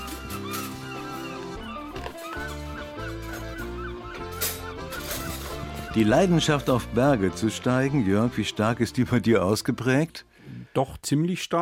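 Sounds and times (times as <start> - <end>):
seagulls calling: 0.0 - 8.7
speech: 6.0 - 11.6.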